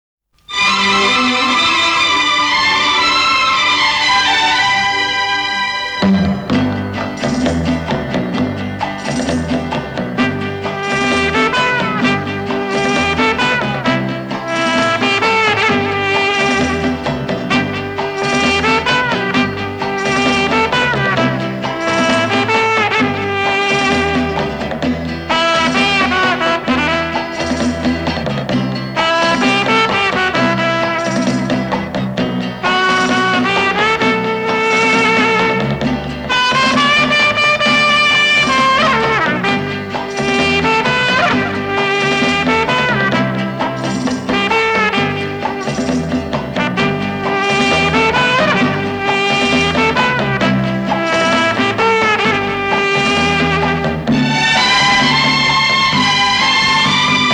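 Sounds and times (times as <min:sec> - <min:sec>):
silver trumpet: 0:00.4 - 0:57.3.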